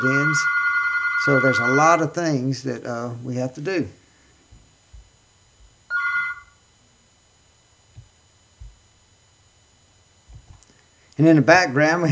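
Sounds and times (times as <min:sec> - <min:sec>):
speech: 0:00.0 - 0:00.6, 0:01.2 - 0:04.0, 0:11.2 - 0:12.0
bright trilling electronic telephone ring: 0:00.0 - 0:02.1, 0:05.9 - 0:06.7
faint steady hiss: 0:01.2 - 0:12.0
scattered low thumps: 0:04.5 - 0:05.8, 0:07.9 - 0:09.0, 0:10.2 - 0:10.6.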